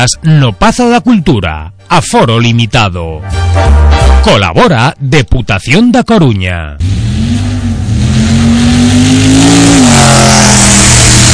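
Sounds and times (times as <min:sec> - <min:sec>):
speech: 0:00.0 - 0:07.5
car engine revving: 0:06.8 - 0:11.3.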